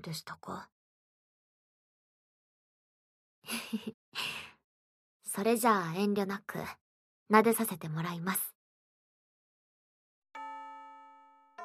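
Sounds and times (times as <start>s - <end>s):
speech: 0.0s - 0.8s, 3.5s - 4.4s, 5.4s - 8.5s
school chime ringing: 10.4s - 11.6s.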